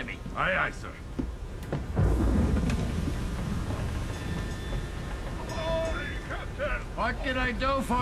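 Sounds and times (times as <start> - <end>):
speech: 0.4 - 1.2, 7.0 - 7.9
faint creaking tones: 1.1 - 7.4
churning wind and water in a storm at sea: 1.2 - 7.9
deep rumbling thunder at sea: 1.7 - 7.0.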